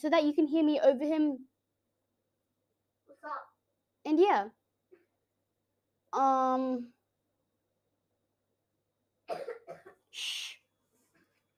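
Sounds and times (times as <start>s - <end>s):
speech: 0.0s - 1.5s, 3.2s - 4.6s, 6.1s - 7.0s, 9.3s - 10.6s
man coughing behind a door: 9.3s - 10.1s.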